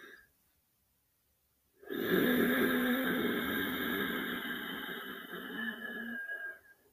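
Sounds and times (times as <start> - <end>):
deep breaths drawn into the belly in a guided breathing exercise: 1.8 - 6.9.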